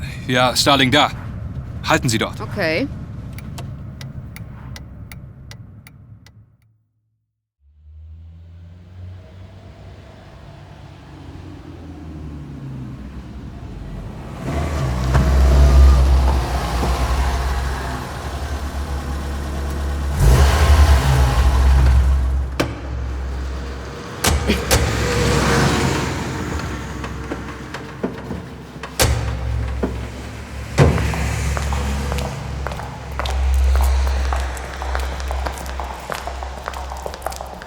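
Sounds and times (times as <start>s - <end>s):
car engine rumbling as the car drives and pulls up: 0.0s - 6.6s, 7.9s - 37.6s
speech: 0.3s - 1.2s, 1.8s - 3.0s
sharp clicks and knocks: 22.5s - 25.6s, 26.5s - 34.7s.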